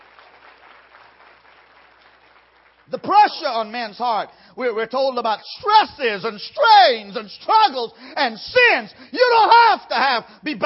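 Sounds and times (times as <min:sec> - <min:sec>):
audience clapping hands in thanks to God: 0:00.0 - 0:03.6
speech: 0:02.9 - 0:10.6.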